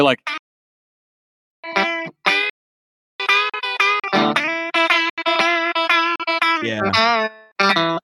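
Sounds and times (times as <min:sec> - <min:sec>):
speech: 0:00.0 - 0:00.3, 0:06.6 - 0:08.0
electric guitar played with pickup selector in position five: 0:01.7 - 0:02.5, 0:03.2 - 0:08.0.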